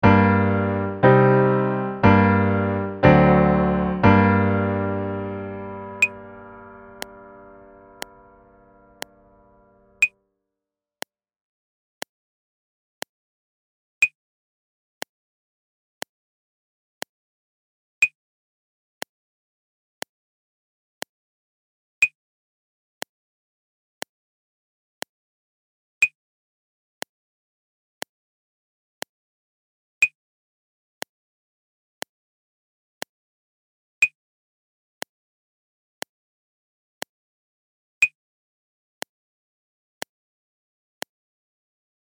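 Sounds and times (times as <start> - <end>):
instrumental music in G minor without piano: 0.0 - 10.1.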